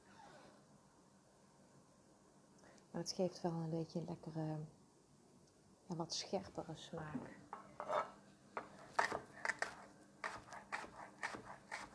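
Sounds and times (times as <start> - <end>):
speech: 3.0 - 4.8, 5.9 - 7.4
knife slicing vegetable into small rings on a board: 9.0 - 11.9.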